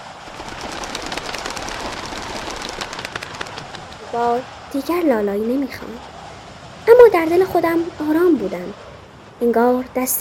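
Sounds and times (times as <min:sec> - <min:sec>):
flock of birds flapping wings bursting into flight: 0:00.0 - 0:04.6
speech: 0:04.1 - 0:06.1, 0:06.8 - 0:08.8, 0:09.4 - 0:10.2.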